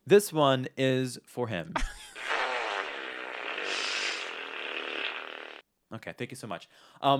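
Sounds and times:
speech: 0.1s - 1.9s, 5.9s - 7.1s
fart sound effect: 2.2s - 5.6s.

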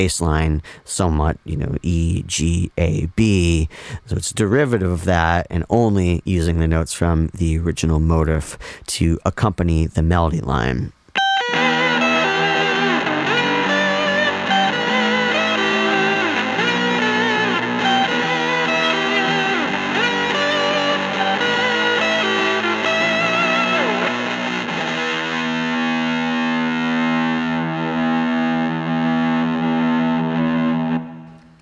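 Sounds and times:
speech: 0.0s - 11.6s
electric guitar through fuzz and overdrive pedals playing power-chord riff: 11.2s - 31.6s.

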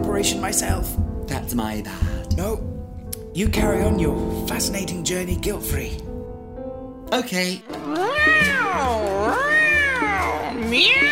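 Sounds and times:
speech: 0.2s - 2.7s, 3.4s - 6.1s, 7.1s - 9.5s, 10.7s - 11.1s
cat meowing: 7.8s - 11.1s.

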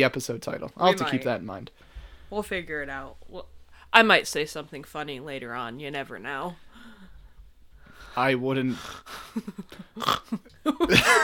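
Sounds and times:
speech: 0.0s - 7.1s, 8.2s - 11.2s
loud snort: 8.7s - 9.3s, 10.0s - 10.3s
person chuckling and snickering: 9.0s - 11.2s.

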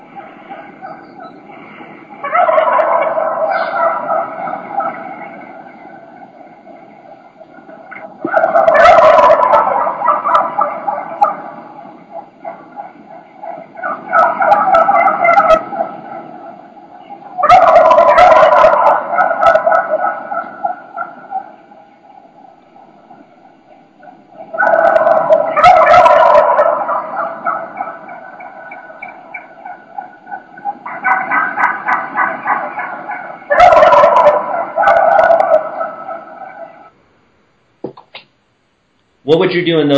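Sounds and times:
wild turkey gobblers gobbling: 0.0s - 37.0s
speech: 39.3s - 39.9s.

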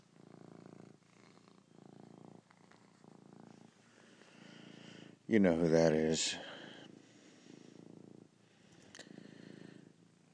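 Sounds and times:
cat purring: 0.0s - 10.3s
speech: 5.3s - 6.6s.

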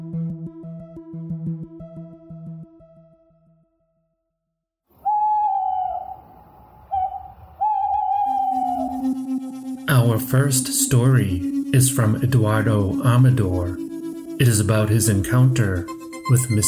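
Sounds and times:
owl hooting: 4.9s - 16.6s
speech: 10.2s - 13.8s, 14.4s - 16.6s.

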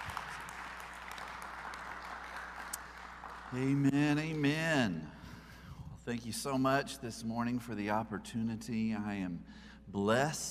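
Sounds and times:
crowd applauding with many hands clapping: 0.0s - 4.5s
speech: 3.5s - 5.2s, 6.1s - 10.4s.

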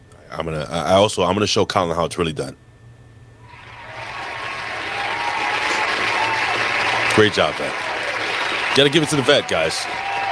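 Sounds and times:
speech: 0.4s - 2.6s, 7.2s - 7.9s, 8.8s - 10.1s
crowd applauding: 3.5s - 10.3s.

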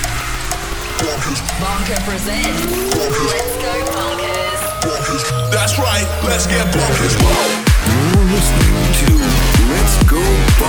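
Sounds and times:
car engine cranked up and revving: 0.0s - 8.0s
speech: 1.3s - 4.3s, 5.1s - 10.6s.

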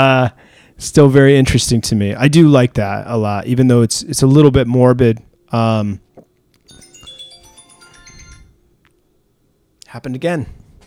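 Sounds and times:
speech: 0.0s - 6.0s, 9.9s - 10.6s
quiet noise: 0.0s - 10.8s
phone ringtone electronic melody: 6.6s - 8.8s.

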